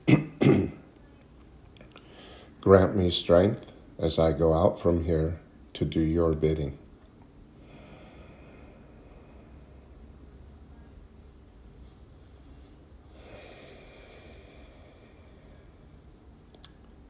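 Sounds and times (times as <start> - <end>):
slow breathing in and out during prayer: 1.9 - 2.6, 7.4 - 16.5
speech: 2.6 - 6.8.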